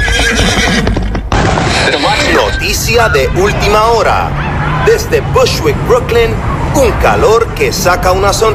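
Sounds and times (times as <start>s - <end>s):
loose horses neighing: 0.0s - 5.1s
dense noise: 0.0s - 8.5s
speech: 3.0s - 8.5s.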